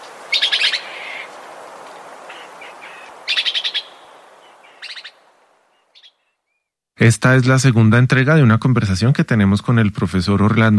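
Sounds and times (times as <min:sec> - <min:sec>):
red-eyed antbird singing trilled notes in Huila Colombia: 0:00.0 - 0:01.3, 0:02.3 - 0:05.2, 0:05.8 - 0:06.7
speech: 0:07.0 - 0:10.7.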